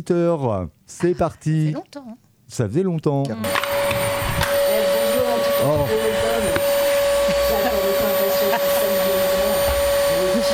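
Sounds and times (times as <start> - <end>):
speech: 0.0 - 4.0, 5.6 - 6.3
vacuum cleaner running: 3.4 - 10.5.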